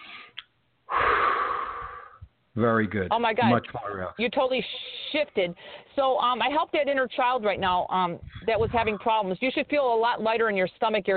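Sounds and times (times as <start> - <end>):
deep breath during a guided back-relaxation session: 0.0 - 2.3, 5.6 - 5.9
speech: 2.6 - 11.1.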